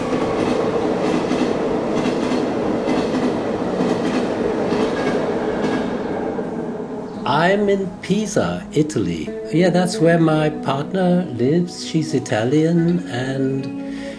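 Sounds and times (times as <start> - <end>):
clickety-clack of train wheels on rails: 0.0 - 9.2
train passing by a window in Pisa, Italy: 0.0 - 13.0
speech: 7.4 - 13.8.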